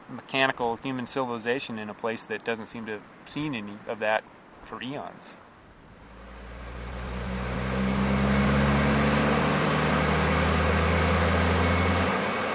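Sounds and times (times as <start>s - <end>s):
speech: 0.1s - 5.4s
heavy seismic thumper truck engine droning: 5.9s - 12.5s.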